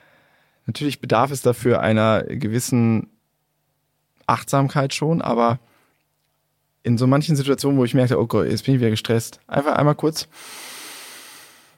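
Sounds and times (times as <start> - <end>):
deliberate deep breath: 0.0 - 0.6, 10.3 - 11.7
speech: 0.7 - 3.1, 4.3 - 5.7, 6.8 - 10.7.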